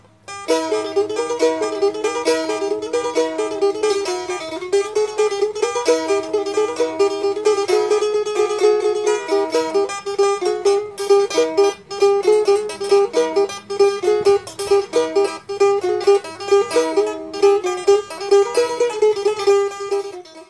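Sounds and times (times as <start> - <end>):
Indonesian lute playing: 0.0 - 20.4.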